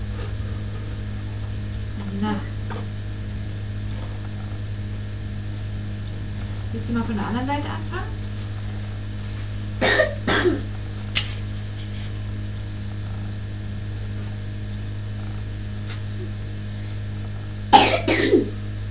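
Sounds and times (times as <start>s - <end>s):
low electrical hum: 0.0s - 18.8s
speech: 2.1s - 3.0s, 6.8s - 8.2s, 10.4s - 10.7s
person coughing: 9.8s - 10.7s, 17.7s - 18.6s.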